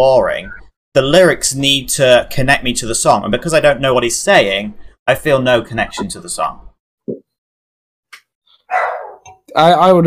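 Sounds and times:
speech: 0:00.0 - 0:07.3, 0:09.5 - 0:10.0
dog barking: 0:08.7 - 0:09.3.

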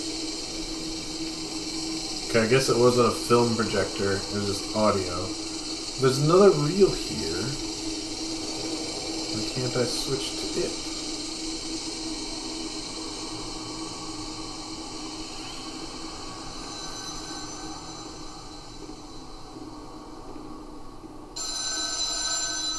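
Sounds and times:
low rumbling background: 0:00.0 - 0:21.3
speech: 0:02.3 - 0:05.4, 0:06.0 - 0:07.7, 0:09.6 - 0:10.9
telephone ringing: 0:21.4 - 0:22.7.

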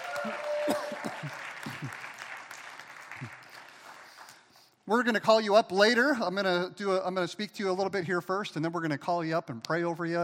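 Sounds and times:
church audience applauding new members: 0:00.0 - 0:04.7
speech: 0:04.9 - 0:10.2.

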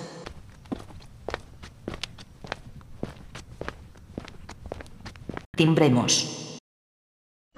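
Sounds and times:
footsteps on a hard floor with slight scuffs: 0:00.2 - 0:05.5
speech: 0:05.6 - 0:06.4.

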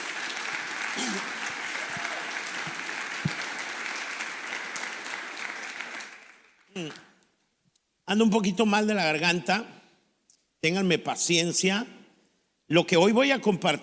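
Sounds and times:
large audience applauding in a reverberant hall: 0:00.0 - 0:07.0
speech: 0:06.8 - 0:07.0, 0:08.1 - 0:09.8, 0:10.6 - 0:12.0, 0:12.7 - 0:13.8.

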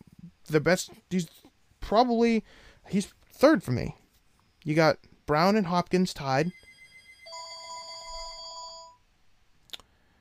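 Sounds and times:
speech: 0:00.5 - 0:04.0, 0:04.6 - 0:06.6
telephone ringing with a bright electronic trill: 0:06.5 - 0:09.0.

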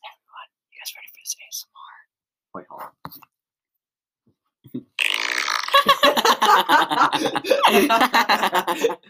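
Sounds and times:
speech: 0:00.9 - 0:03.3, 0:06.6 - 0:09.0
short buzzy fart: 0:04.8 - 0:05.9
loud wheezing laughter: 0:05.7 - 0:09.0.

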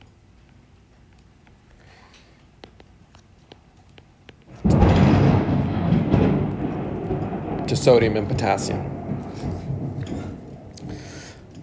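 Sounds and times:
thunder rumbling: 0:04.5 - 0:11.6
speech: 0:07.7 - 0:09.0.

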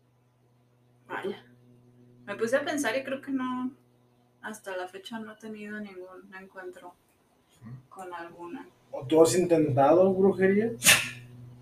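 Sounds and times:
quiet low hum: 0:00.0 - 0:06.9, 0:07.6 - 0:11.6
speech: 0:01.2 - 0:01.5, 0:02.3 - 0:03.8, 0:04.4 - 0:07.0, 0:07.6 - 0:11.2
sneeze: 0:10.8 - 0:11.3.

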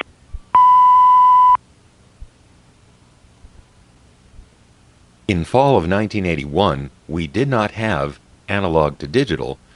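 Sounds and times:
faint noise: 0:00.0 - 0:09.7
electronic beep: 0:00.6 - 0:01.6
speech: 0:05.3 - 0:09.6.

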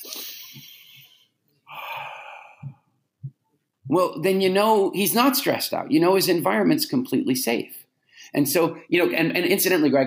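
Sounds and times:
person imitating slow calm breathing: 0:00.1 - 0:03.0
speech: 0:03.9 - 0:10.0.

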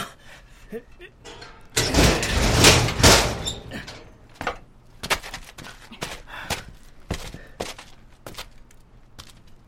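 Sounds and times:
footsteps: 0:01.2 - 0:09.6
heavy iron door scraping and grinding open: 0:01.3 - 0:04.1.

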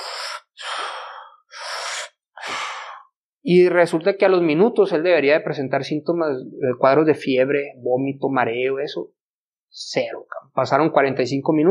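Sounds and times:
voice imitating heavy breathing of a man on a hospital bed: 0:00.0 - 0:03.2
speech: 0:03.4 - 0:09.2, 0:09.8 - 0:11.6.

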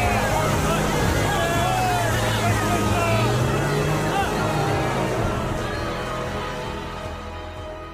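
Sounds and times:
several voices shouting angrily: 0:00.0 - 0:06.2
heavy truck engine roaring and pulling away: 0:00.0 - 0:07.9.

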